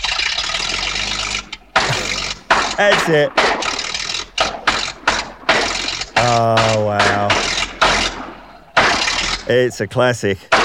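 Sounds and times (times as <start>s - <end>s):
seaplane engine roaring, sputtering and misfiring: 0.0s - 10.6s
speech: 2.8s - 3.6s, 6.2s - 7.5s, 9.5s - 10.6s.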